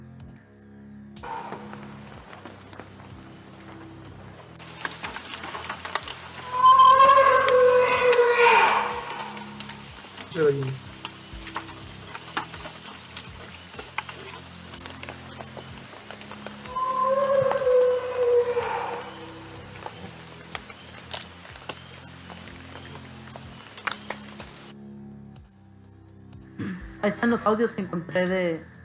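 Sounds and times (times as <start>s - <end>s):
purported Bigfoot vocalization, wavering howl-like calls: 1.2s - 2.6s, 4.7s - 24.7s
steady crackly noise: 1.2s - 24.8s
speech: 27.2s - 28.7s.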